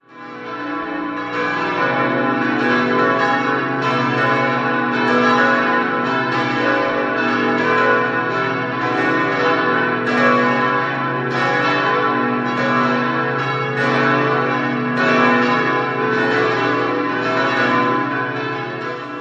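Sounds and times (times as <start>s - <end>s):
five-bell peal of a parish church in Kitzingen cast in Brilon: 0.0s - 19.1s.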